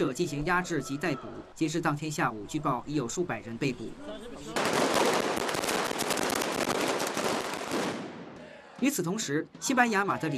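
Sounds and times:
faint crowd noise: 0:00.0 - 0:04.8, 0:08.2 - 0:10.3
speech: 0:00.0 - 0:05.0, 0:08.8 - 0:10.3
string of firecrackers crackling at a street protest: 0:04.5 - 0:08.5.

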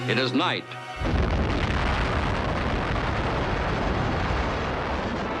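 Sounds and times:
speech: 0:00.1 - 0:01.2
massive explosion rumble: 0:01.0 - 0:05.3.

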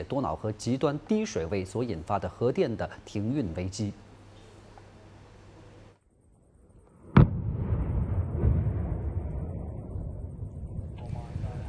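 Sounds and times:
speech: 0:00.0 - 0:04.0
controlled explosion blast in canal water: 0:07.1 - 0:11.6.

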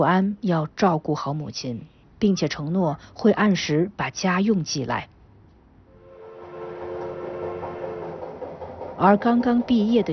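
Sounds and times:
speech: 0:00.0 - 0:05.1, 0:09.0 - 0:10.1
train rumbling: 0:05.9 - 0:10.1.

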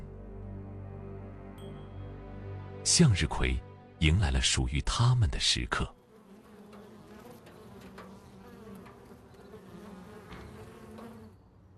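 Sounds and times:
speech: 0:02.8 - 0:06.0
many bees buzzing in a sunflower field: 0:06.0 - 0:11.7.

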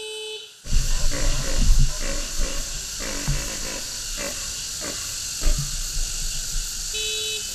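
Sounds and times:
vehicle horn honking to call Père David's deer to feed: 0:00.0 - 0:00.6, 0:06.9 - 0:07.5
constant high-pitched hiss: 0:00.0 - 0:07.5
rumbling vehicle engine: 0:00.7 - 0:07.5.

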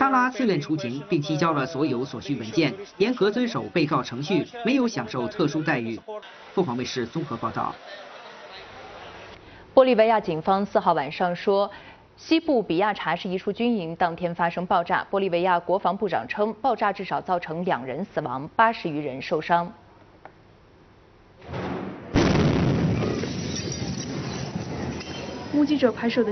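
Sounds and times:
speech: 0:00.2 - 0:08.1, 0:09.8 - 0:19.8, 0:25.6 - 0:26.2
loud explosion blast at a military barracks in western Bolivia: 0:21.4 - 0:25.5.

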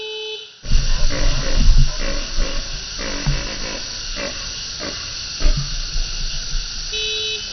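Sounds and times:
vehicle horn honking to call deer feeding: 0:00.0 - 0:02.0, 0:06.9 - 0:07.5
rustling noise: 0:00.6 - 0:07.5
steady vehicle engine rumble: 0:00.6 - 0:07.5.

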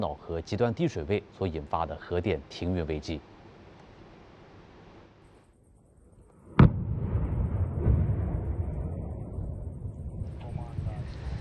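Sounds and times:
speech: 0:00.0 - 0:03.3
controlled explosion in a canal: 0:06.6 - 0:11.3.

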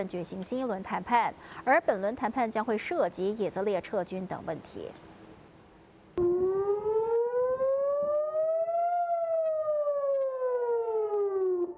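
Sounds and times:
speech: 0:00.0 - 0:05.1
air raid siren wailing: 0:06.2 - 0:11.7.

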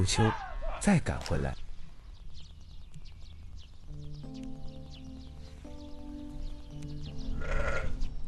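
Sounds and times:
speech: 0:00.0 - 0:01.6
flock of sheep bleating during seasonal move to summer pasture: 0:07.3 - 0:08.1.

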